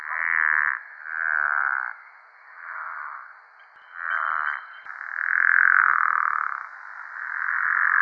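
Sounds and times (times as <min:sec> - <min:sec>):
pickerel frog giving rattling snore-like calls: 0:00.0 - 0:01.9, 0:04.0 - 0:08.0.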